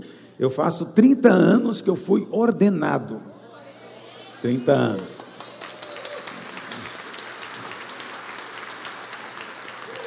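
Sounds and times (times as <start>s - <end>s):
speech: 0.0s - 3.3s, 4.4s - 5.2s
church audience applauding: 4.3s - 10.0s.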